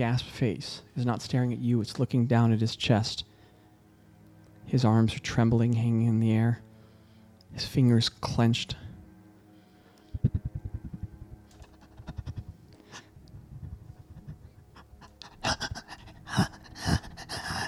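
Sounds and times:
speech: 0.0 - 3.3, 4.7 - 6.7, 7.5 - 8.8
rapid ragged panting breaths and harsh gasps: 11.6 - 17.6.

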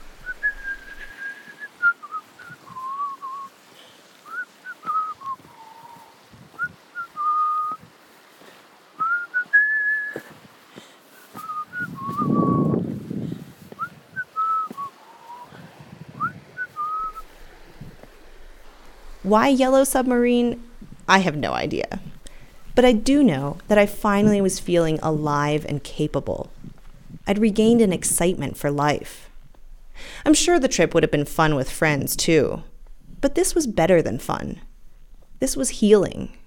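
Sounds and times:
person whistling a cheerful tune while hiking in a quiet canyon in Moab: 0.2 - 3.5, 4.3 - 7.8, 9.0 - 10.3, 11.3 - 12.8, 13.8 - 15.5, 16.2 - 17.3
speech: 19.3 - 22.0, 22.8 - 26.6, 27.3 - 29.3, 30.0 - 34.7, 35.4 - 36.4.

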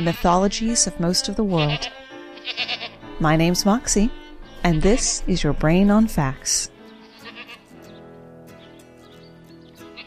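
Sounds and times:
goat bleating: 0.0 - 0.5, 1.2 - 3.1, 3.9 - 7.8
speech: 0.0 - 6.7.

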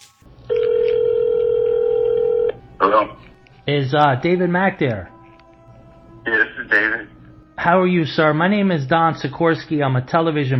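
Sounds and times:
low hum: 0.3 - 10.5
telephone line ringing: 0.5 - 3.1
speech: 2.8 - 5.1, 7.6 - 10.5.

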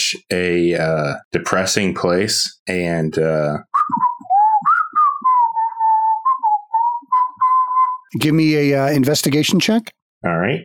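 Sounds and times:
speech: 0.1 - 4.0, 8.1 - 10.6
person whistling a cheerful wandering tune while strolling through a boneyard: 3.6 - 8.1.

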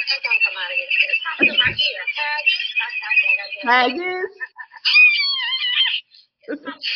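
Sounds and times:
speech: 0.1 - 4.4
upset cat meowing and yowling: 4.9 - 5.9.

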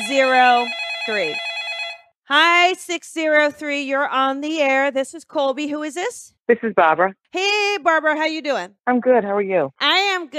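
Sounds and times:
steady high tone: 0.0 - 1.4
telephone ringing for an incoming caller: 0.0 - 2.2
speech: 0.1 - 1.5, 2.3 - 10.3.

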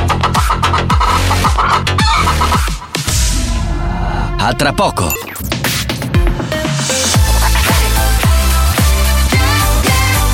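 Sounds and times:
chicken clucking: 0.0 - 2.8
rhythmic music or percussion: 0.0 - 3.7, 4.3 - 10.3
speech: 4.5 - 5.9.

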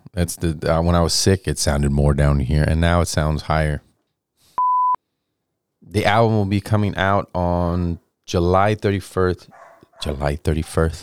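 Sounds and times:
speech: 0.2 - 3.9, 5.9 - 11.0
dog barking: 9.5 - 10.8.

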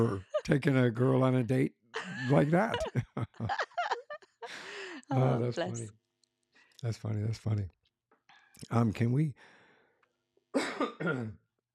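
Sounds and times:
speech: 0.0 - 3.6, 4.5 - 6.0, 6.8 - 7.8, 8.6 - 9.6, 10.6 - 11.4
laughter: 0.0 - 5.8
harsh coughs: 10.6 - 11.4.

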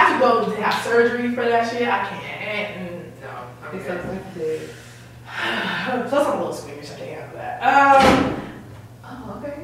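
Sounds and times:
low room noise: 0.0 - 9.6
speech: 0.2 - 8.4
door shutting with a thud: 8.0 - 8.6.

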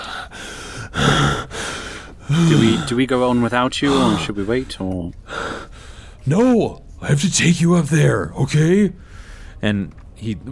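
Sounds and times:
voice imitating a man heavily panting after climbing stairs: 0.8 - 3.0, 3.8 - 4.5
speech: 2.4 - 5.3, 6.2 - 10.5.

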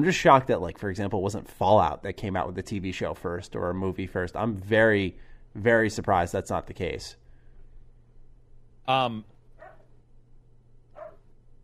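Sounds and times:
speech: 0.0 - 7.2, 8.8 - 9.3
low steady hum: 0.0 - 11.6
dog barking: 9.6 - 9.9, 10.9 - 11.3
faint short yips: 11.0 - 11.2.

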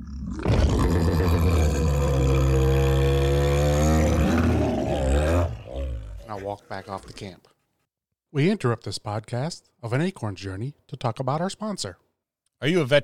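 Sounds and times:
bear roaring: 0.0 - 7.3
speech: 6.5 - 7.5, 8.3 - 12.0, 12.6 - 13.0.

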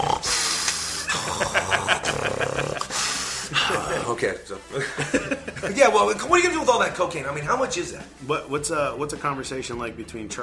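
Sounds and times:
person mimicking a man snoring: 0.0 - 4.0
laughter: 1.0 - 6.2
speech: 4.1 - 10.4.

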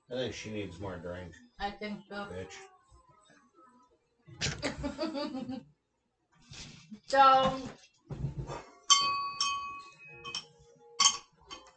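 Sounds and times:
speech: 0.1 - 2.7, 4.3 - 5.7, 6.5 - 7.9
laughter: 4.6 - 5.6
small bell ringing: 8.9 - 11.7.

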